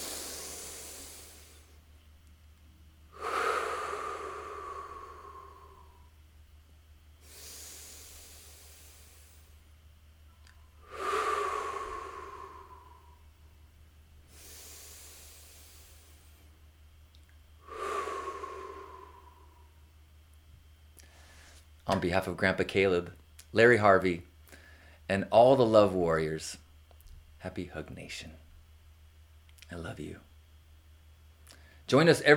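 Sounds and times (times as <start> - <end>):
deep breaths in through the nose and out through the mouth in a guided group breathing exercise: 0.0 - 1.9, 3.1 - 6.3, 7.2 - 9.8, 10.4 - 16.7, 17.5 - 20.0, 21.0 - 21.8, 24.5 - 25.1, 31.5 - 31.9
speech: 21.9 - 24.3, 25.1 - 26.6, 27.4 - 28.4, 29.7 - 30.3, 31.9 - 32.3.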